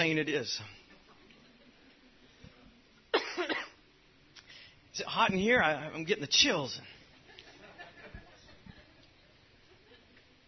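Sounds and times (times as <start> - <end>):
speech: 0.0 - 0.8, 5.0 - 7.0
dry cough: 3.1 - 3.8
laughter: 7.0 - 10.4.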